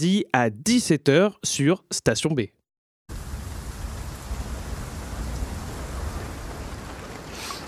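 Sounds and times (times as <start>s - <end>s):
speech: 0.0s - 2.6s
steady rain pattering on a car roof: 3.1s - 7.6s.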